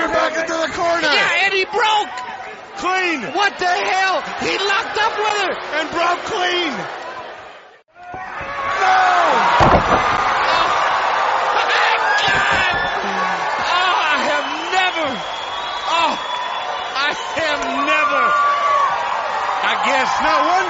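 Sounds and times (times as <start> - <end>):
roaring crowd cheering, whistling and yelling: 1.0 - 20.6
speech: 2.9 - 7.0, 8.8 - 10.3, 19.7 - 20.6
wrestler slamming onto ring mat: 9.6 - 10.4.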